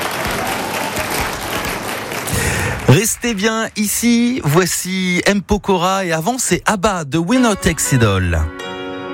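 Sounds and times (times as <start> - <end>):
crowd applauding: 0.0 - 3.5
speech: 2.9 - 8.6.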